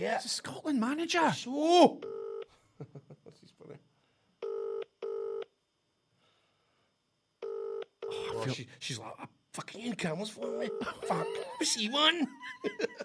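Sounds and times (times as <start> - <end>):
speech: 0.0 - 2.2, 8.4 - 13.0
phone dialing tones on speakerphone: 4.4 - 5.5, 7.4 - 8.4, 10.4 - 11.2
laughter: 10.6 - 13.0.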